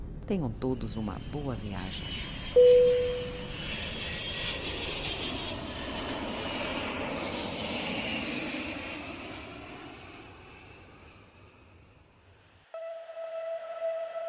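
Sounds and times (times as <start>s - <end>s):
airplane engines droning in the cabin before takeoff: 0.0s - 14.2s
speech: 0.3s - 3.8s
tonal chime: 2.6s - 3.5s.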